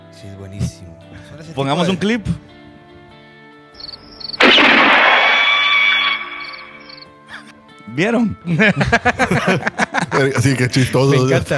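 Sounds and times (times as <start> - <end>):
speech: 0.2 - 2.6, 7.9 - 11.5
crickets chirping: 3.8 - 4.4, 5.3 - 7.1
movie-style gunshot with ringing whining tail: 4.4 - 7.0
laughter: 8.5 - 11.5.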